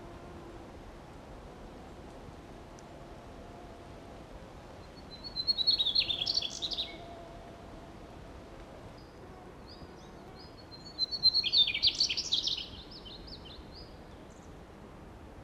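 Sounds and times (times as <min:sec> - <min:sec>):
faint background hiss: 0:00.0 - 0:15.4
Mugimaki flycatcher song: 0:05.0 - 0:07.0, 0:09.7 - 0:14.4.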